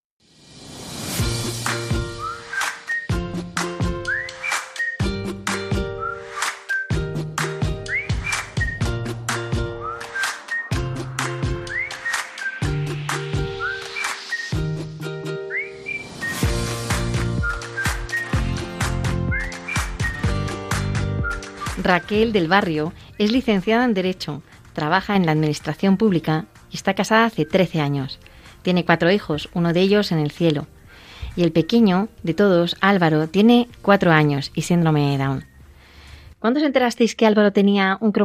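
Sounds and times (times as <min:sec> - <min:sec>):
rhythmic instrumental backing with steady beats: 0:01.2 - 0:26.9
whistled jingle with bouncy repeating melody: 0:02.1 - 0:03.2, 0:04.0 - 0:05.1, 0:06.0 - 0:07.0, 0:07.9 - 0:08.9, 0:09.8 - 0:10.8, 0:11.6 - 0:12.7, 0:13.5 - 0:14.6, 0:15.5 - 0:16.6, 0:17.4 - 0:18.5, 0:19.3 - 0:20.4, 0:21.2 - 0:22.4
speech: 0:21.9 - 0:30.8, 0:31.4 - 0:35.5, 0:36.4 - 0:38.2.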